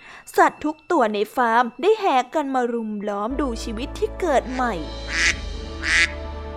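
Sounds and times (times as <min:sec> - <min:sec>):
speech: 0:00.2 - 0:05.0
duck quacking: 0:05.1 - 0:06.2.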